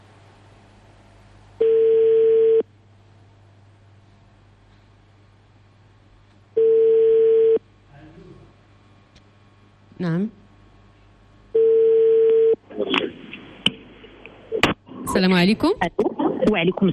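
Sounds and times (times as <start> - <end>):
low hum: 0.0 - 16.9
person answering a radio phone call: 1.6 - 2.6, 11.6 - 12.6
telephone line ringing on a live radio call: 1.6 - 2.6, 6.6 - 7.6, 11.6 - 12.6
speech: 15.2 - 16.9.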